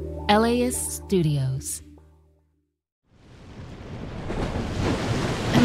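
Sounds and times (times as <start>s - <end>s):
speech: 0.3s - 1.7s
ocean surf and storm surge waves crashing: 3.1s - 5.6s.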